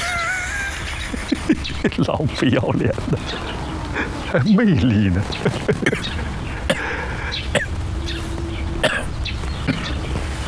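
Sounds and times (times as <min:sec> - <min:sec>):
laughter: 0:00.0 - 0:07.5
faint hum: 0:00.0 - 0:10.4
speech: 0:01.8 - 0:03.5, 0:04.3 - 0:06.2
person coughing: 0:06.7 - 0:07.7, 0:08.8 - 0:09.1.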